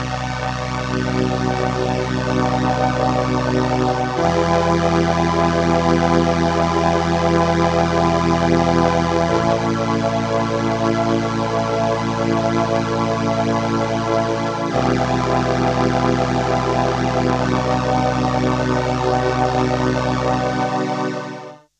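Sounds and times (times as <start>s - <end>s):
Crumar Performer synthesizer strings: 0.2s - 21.5s.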